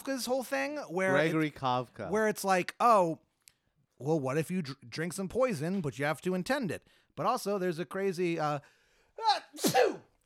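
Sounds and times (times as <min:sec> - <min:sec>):
speech: 0:00.0 - 0:03.3, 0:04.0 - 0:10.1
sneeze: 0:09.3 - 0:10.2.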